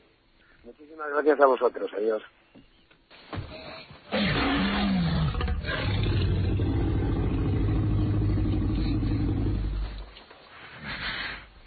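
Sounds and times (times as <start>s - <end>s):
speech: 0.6s - 2.7s
dinosaur roar sound effect: 4.1s - 10.1s
quiet trailing growl: 4.1s - 10.1s.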